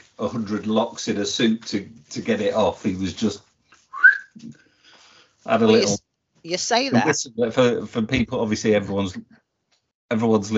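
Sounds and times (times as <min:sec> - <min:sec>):
speech: 0:00.2 - 0:03.5, 0:04.4 - 0:04.6, 0:05.4 - 0:09.4, 0:10.1 - 0:10.5
person whistling a short rising note: 0:03.9 - 0:04.4.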